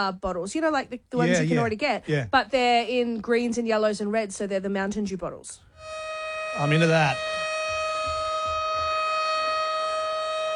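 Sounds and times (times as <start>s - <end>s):
speech: 0.0s - 5.9s, 6.6s - 7.4s
cyclone alert siren wailing: 5.8s - 10.5s
faint low thumps: 7.1s - 9.1s.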